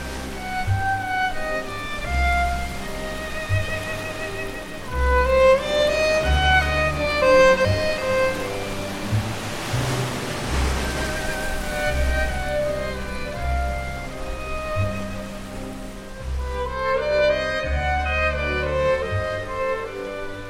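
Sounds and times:
soft sustained music: 0:00.0 - 0:20.4
sea water sloshing and splashing as people swim: 0:03.8 - 0:12.4.

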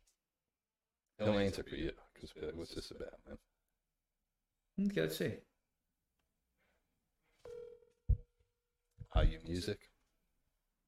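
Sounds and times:
speech: 0:01.2 - 0:03.5, 0:04.8 - 0:05.5, 0:09.1 - 0:09.9
phone call ringback tone, single steady electronic tone: 0:07.4 - 0:08.3.

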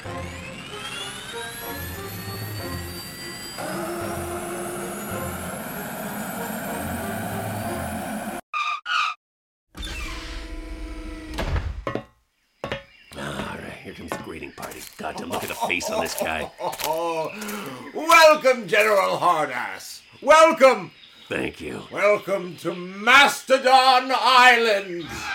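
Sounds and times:
giant flying helicarrier engines roaring and whining as it lands: 0:00.0 - 0:08.4
laughter: 0:15.0 - 0:17.9
speech: 0:15.1 - 0:25.3.

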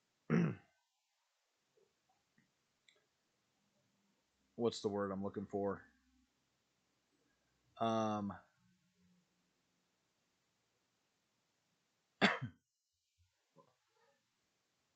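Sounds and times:
person coughing: 0:00.3 - 0:00.7, 0:12.2 - 0:12.6
throat clearing: 0:00.3 - 0:00.7, 0:12.2 - 0:12.6
speech: 0:04.6 - 0:05.9, 0:07.8 - 0:08.5.

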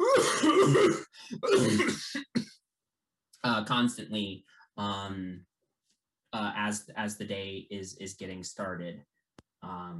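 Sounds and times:
man imitating a bad hacking cough: 0:00.0 - 0:02.5
speech: 0:00.7 - 0:02.1, 0:03.5 - 0:05.5, 0:06.3 - 0:09.9.

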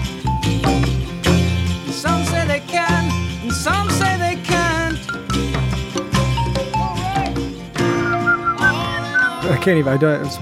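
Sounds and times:
full band recording: 0:00.0 - 0:10.4
person whistling a melody: 0:06.4 - 0:09.5
speech: 0:09.6 - 0:10.4.

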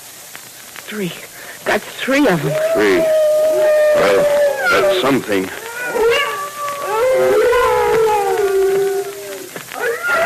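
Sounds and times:
speech: 0:00.9 - 0:06.2
timber wolves howling together: 0:02.3 - 0:10.2.

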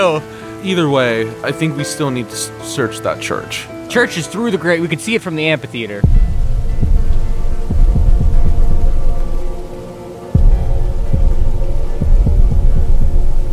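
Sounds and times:
speech: 0:00.0 - 0:06.5
deep droning hum: 0:06.0 - 0:13.5
low irregular thumps: 0:06.0 - 0:13.5.

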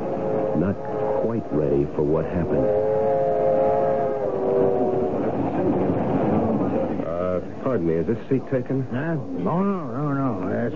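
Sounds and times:
passenger train rumbling and clattering on rails heard from inside its dining car: 0:00.0 - 0:10.7
speech: 0:00.6 - 0:03.0, 0:07.6 - 0:10.7.

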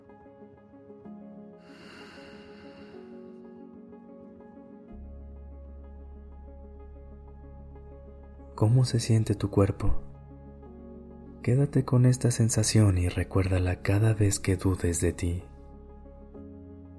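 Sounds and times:
slow breathing in and out: 0:01.6 - 0:03.5
speech: 0:08.6 - 0:10.1, 0:11.4 - 0:15.5.

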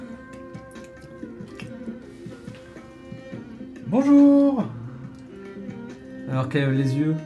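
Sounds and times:
woman chewing gum: 0:00.0 - 0:03.6, 0:05.0 - 0:05.6
speech: 0:03.9 - 0:04.8, 0:06.3 - 0:07.2.

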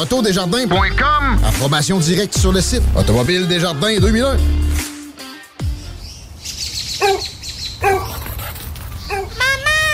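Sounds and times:
speech: 0:00.0 - 0:04.6
dog barking: 0:07.0 - 0:08.4, 0:09.1 - 0:09.4.

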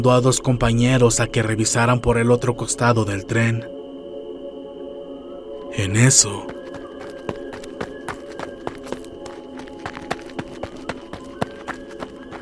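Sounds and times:
speech: 0:00.0 - 0:03.8, 0:05.8 - 0:06.6
running footsteps: 0:06.4 - 0:12.3.

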